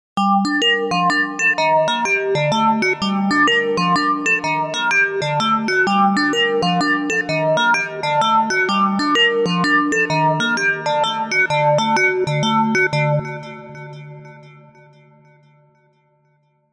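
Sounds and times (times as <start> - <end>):
analogue synthesizer with 24 dB filter: 0.2 - 16.2.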